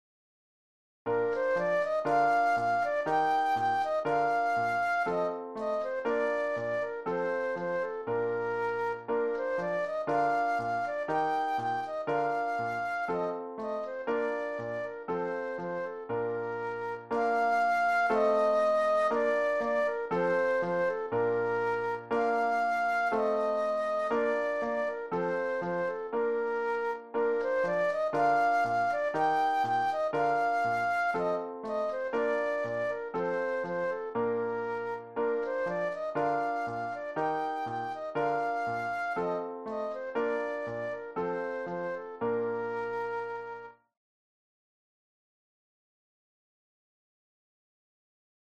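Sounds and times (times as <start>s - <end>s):
classical flute solo: 1.1s - 43.9s.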